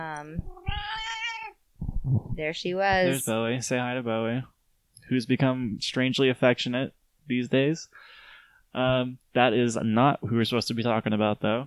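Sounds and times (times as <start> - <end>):
speech: 0.2 - 0.9, 2.1 - 8.1, 8.7 - 11.6
female cat meowing: 0.4 - 1.6.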